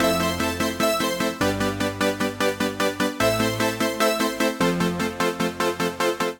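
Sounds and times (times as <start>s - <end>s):
DCO synthesizer music loop in A minor: 0.0s - 6.3s.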